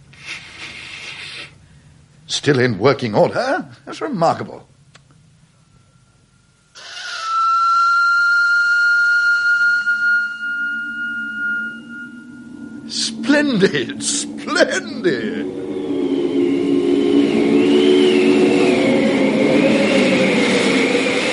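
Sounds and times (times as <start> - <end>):
speech: 2.3 - 4.7, 13.5 - 15.6
whistle blown in a long shrill blast: 6.8 - 21.3
sudden strong gust of wind: 11.3 - 21.3.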